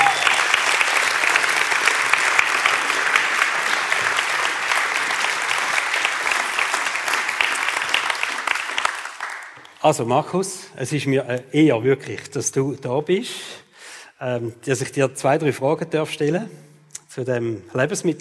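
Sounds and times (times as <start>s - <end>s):
audience applause welcoming a former pastor onto the stage: 0.0s - 9.8s
speech: 9.8s - 13.6s, 14.2s - 18.1s.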